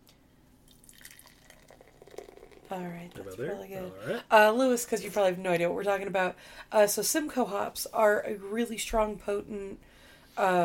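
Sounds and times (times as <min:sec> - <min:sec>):
beer of 8% alcohol by volume pouring into a glass: 0:00.7 - 0:03.6
speech: 0:02.7 - 0:10.6.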